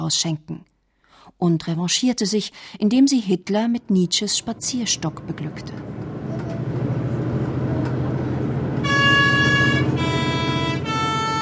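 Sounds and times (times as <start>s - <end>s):
speech: 0.0s - 0.7s, 1.3s - 6.1s
bus engine drone climbing the Maloja mountain pass: 3.6s - 11.3s
bus horn notes on the Maloja mountain pass: 7.6s - 11.3s.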